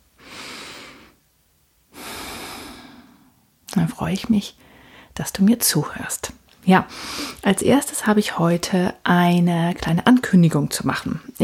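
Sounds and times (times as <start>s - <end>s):
deep breath in and out: 0.2s - 1.2s, 1.9s - 3.6s, 4.6s - 5.2s
speech: 3.8s - 11.4s.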